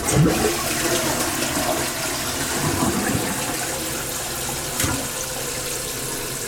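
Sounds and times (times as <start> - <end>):
toilet flushing: 0.0 - 6.4.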